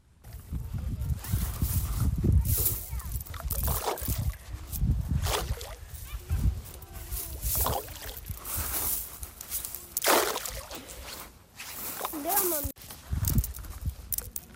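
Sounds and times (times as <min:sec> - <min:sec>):
steady gusting wind: 0:00.0 - 0:14.5
stones thrown into water: 0:02.7 - 0:04.4, 0:05.2 - 0:05.8, 0:07.5 - 0:08.4, 0:10.0 - 0:11.0.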